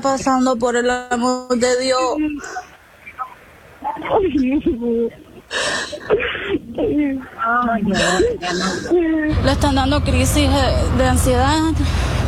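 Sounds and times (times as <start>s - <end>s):
speech: 0.0s - 2.7s, 3.9s - 12.2s
woman sobbing and wailing over a phone line: 4.2s - 9.4s.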